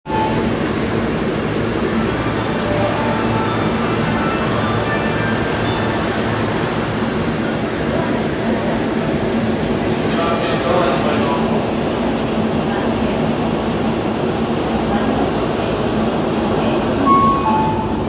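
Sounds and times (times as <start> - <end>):
subway station sounds: 0.0 - 18.0.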